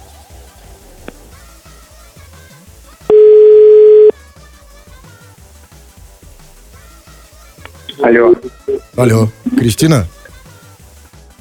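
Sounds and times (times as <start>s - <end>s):
telephone tone while placing a call: 3.1s - 4.1s, 7.9s - 8.9s
low sound: 7.7s - 10.3s
speech: 8.0s - 10.2s.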